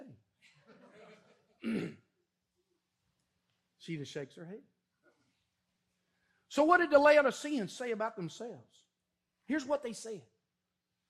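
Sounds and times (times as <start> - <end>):
laughter: 0.4 - 1.6
speech: 1.6 - 2.0, 3.9 - 4.8, 6.5 - 8.9, 9.5 - 10.3
sick man coughing: 1.6 - 2.2.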